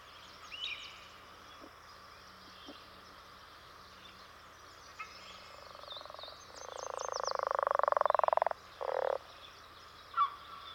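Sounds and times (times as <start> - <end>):
faint chirps and calls: 0.0 - 10.7
leopard frog territorial song: 5.6 - 9.3.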